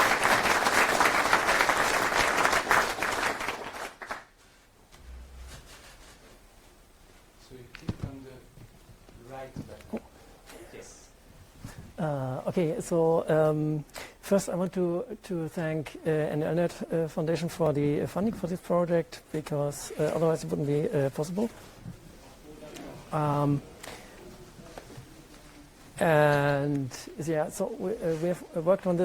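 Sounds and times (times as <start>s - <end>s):
loud dense crowd applause: 0.0s - 4.3s
speech: 12.6s - 21.7s, 23.1s - 23.7s, 26.0s - 29.0s.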